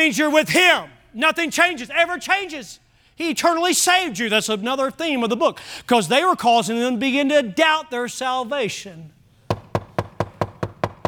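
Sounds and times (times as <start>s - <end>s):
speech: 0.0s - 9.2s
sharp knocks on a wooden surface: 9.5s - 11.0s.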